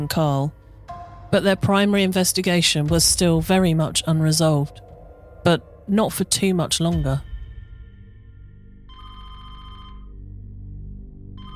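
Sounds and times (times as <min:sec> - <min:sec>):
speech: 0:00.0 - 0:00.6, 0:01.3 - 0:07.3
steady low rumble: 0:00.0 - 0:08.6
telephone ringing in a trilling burst: 0:08.9 - 0:10.2, 0:11.4 - 0:11.5.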